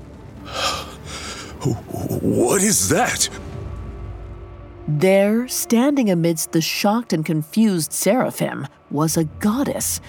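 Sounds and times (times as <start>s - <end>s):
breathy gasp and heavy exhale in relief: 0.5s - 1.6s
speech: 1.6s - 3.6s, 4.9s - 10.0s.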